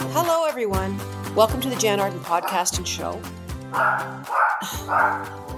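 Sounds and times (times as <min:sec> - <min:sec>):
speech: 0:00.1 - 0:05.5
dog barking: 0:02.4 - 0:02.8, 0:03.7 - 0:05.5.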